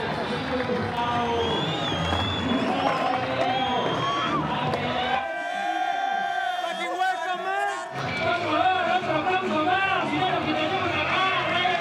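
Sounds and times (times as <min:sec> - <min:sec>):
large crowd roaring and cheering: 0:00.0 - 0:11.8
whistle-like calls from the crowd: 0:01.1 - 0:04.4.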